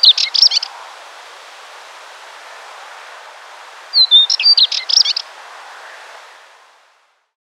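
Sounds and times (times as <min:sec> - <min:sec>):
thin spectacled warbler whistle: 0:00.0 - 0:00.8, 0:03.9 - 0:05.3
spectacled warbler singing rapid scratchy warbled phrases: 0:00.0 - 0:06.0.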